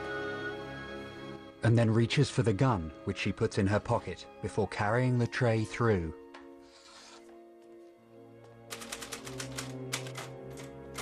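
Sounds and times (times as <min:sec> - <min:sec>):
speech: 0:01.6 - 0:06.2
typewriter keystrokes as a man types at his desk: 0:08.7 - 0:11.0.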